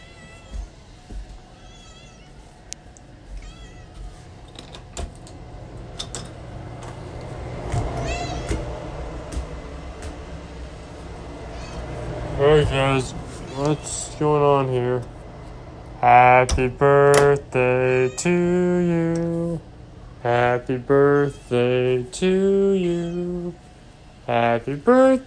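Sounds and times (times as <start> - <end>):
cat meowing: 0.0 - 0.8, 1.6 - 2.4, 3.4 - 4.0, 8.0 - 8.6, 11.5 - 11.9, 13.3 - 14.2, 22.9 - 23.4
steady low rumble: 3.1 - 25.2
speech: 12.6 - 15.2, 16.0 - 23.6, 24.3 - 25.2.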